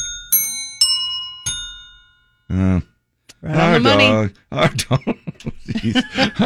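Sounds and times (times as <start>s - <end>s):
bells rung as tuning notes: 0.0s - 2.4s
speech: 2.5s - 6.4s
laughter: 3.4s - 6.4s.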